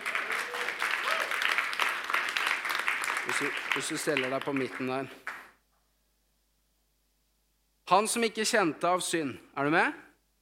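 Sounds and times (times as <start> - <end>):
audience clapping: 0.0 - 5.6
speech: 3.3 - 5.3, 7.9 - 10.0.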